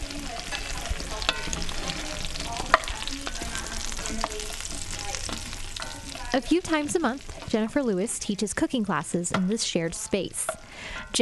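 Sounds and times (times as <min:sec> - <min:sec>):
potatoes sizzling in a Dutch oven: 0:00.0 - 0:11.1
light clinks of stirring: 0:00.5 - 0:07.6
speech: 0:06.3 - 0:11.1.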